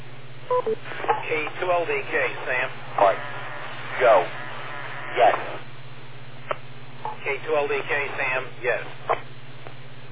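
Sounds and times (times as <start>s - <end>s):
steady low hum: 0.0s - 10.1s
short electronic beep tones from a radio net check-in system: 0.5s - 0.8s
speech: 0.6s - 3.4s, 4.0s - 4.4s, 5.1s - 5.7s, 7.2s - 9.1s.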